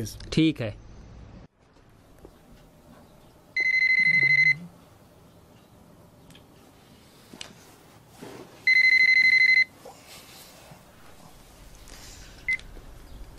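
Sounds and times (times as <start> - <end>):
telephone ringing in electronic trilling bursts: 3.6 - 4.6, 8.6 - 9.7.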